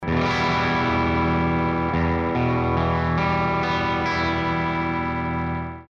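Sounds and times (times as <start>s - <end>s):
electric guitar with single coil bridge pickup: 0.0s - 5.9s.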